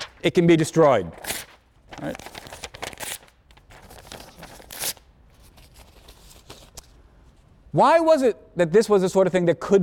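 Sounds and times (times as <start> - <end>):
speech: 0.2 - 1.3, 2.0 - 2.3, 7.7 - 9.8
sheet of paper being ripped: 1.1 - 5.1.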